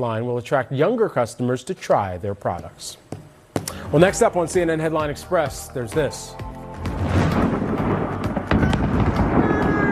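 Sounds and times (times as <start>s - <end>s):
speech: 0.0s - 3.0s, 3.8s - 7.2s
sharp crackling bangs: 6.8s - 9.9s
massive explosion with fireworks: 6.9s - 9.9s.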